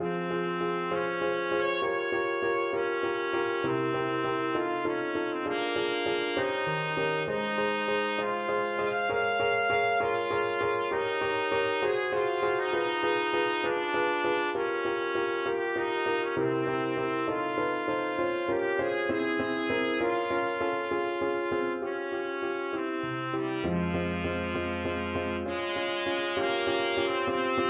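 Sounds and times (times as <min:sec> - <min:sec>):
trumpet playing a prelude: 0:00.0 - 0:27.6.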